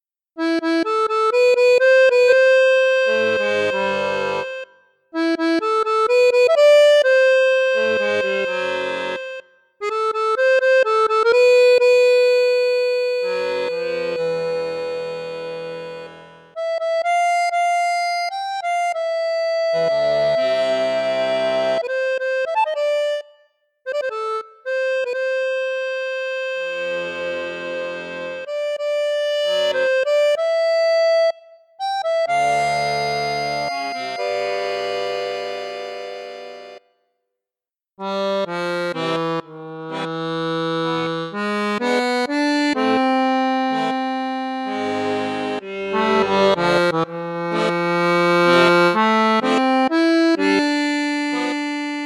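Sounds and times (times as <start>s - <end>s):
Cavagnolo Vedette 10 Super accordion in bassoon register: 0.0s - 37.1s, 38.0s - 52.0s.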